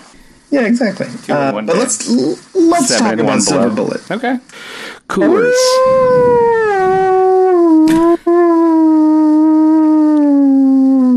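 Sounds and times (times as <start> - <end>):
speech: 0.5 - 7.0
werewolf howl: 5.2 - 11.1.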